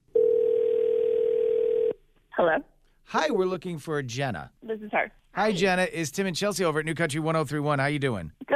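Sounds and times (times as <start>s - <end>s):
steady telephone dial tone: 0.1s - 2.0s
speech: 2.4s - 8.5s.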